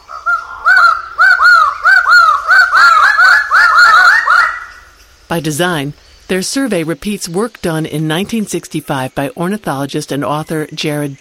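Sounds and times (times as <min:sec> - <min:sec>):
Raggiana bird of paradise giving harsh honking calls: 0:00.0 - 0:05.0
speech: 0:05.3 - 0:11.1.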